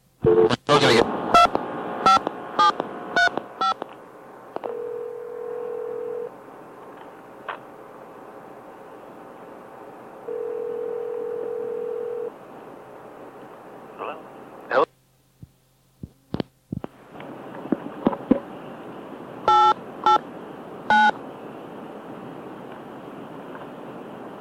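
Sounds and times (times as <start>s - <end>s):
steady phone tone: 0.2s - 0.6s, 4.6s - 6.3s, 10.3s - 12.3s, 19.5s - 20.2s, 20.9s - 21.2s
low noisy phone line hum: 0.2s - 3.8s, 4.5s - 6.3s, 10.3s - 12.3s, 19.4s - 20.2s, 20.9s - 21.2s
touch-tone telephone keypad beeps: 19.5s - 20.2s, 20.9s - 21.2s.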